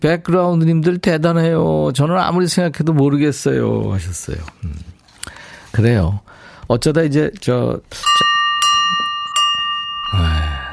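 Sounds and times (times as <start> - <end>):
speech: 0.0 - 5.0, 5.7 - 8.2
bell struck and ringing: 8.0 - 10.7.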